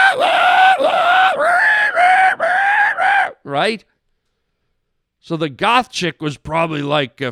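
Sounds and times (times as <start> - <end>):
human voice imitating a pig's squealing scream: 0.0 - 3.5
speech: 3.6 - 3.9, 5.2 - 7.2.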